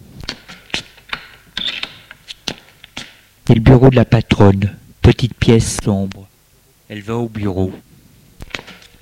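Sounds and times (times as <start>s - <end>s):
office door scraping creak: 1.1s - 2.2s
speech: 3.5s - 6.3s, 6.9s - 7.9s.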